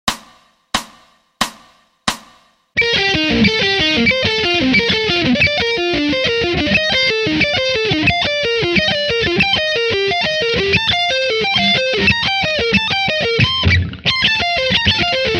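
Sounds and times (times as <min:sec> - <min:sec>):
slow sweep picked guitar: 0:02.8 - 0:15.3.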